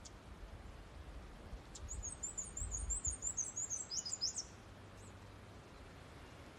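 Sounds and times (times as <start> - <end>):
soft steady background hiss: 0.0 - 6.5
black-and-white warbler singing in Maryland: 1.7 - 5.2.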